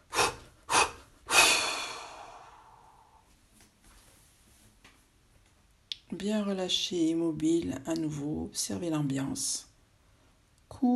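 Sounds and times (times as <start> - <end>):
deep mouth breathing during a shoulder-relaxation exercise: 0.0 - 3.2
speech: 6.2 - 9.7.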